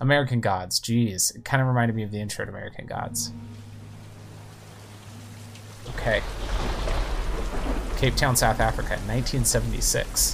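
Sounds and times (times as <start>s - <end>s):
speech: 0.0s - 3.7s, 5.9s - 6.6s, 8.0s - 10.3s
rain falling on a street in Cape Town South Africa: 3.5s - 10.3s.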